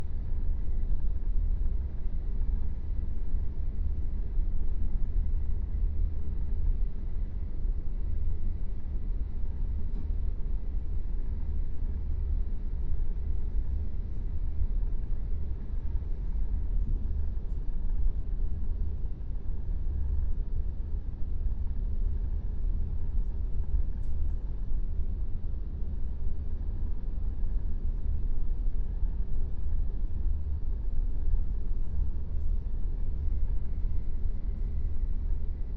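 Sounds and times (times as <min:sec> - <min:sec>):
ambience loop: 0:00.0 - 0:35.7.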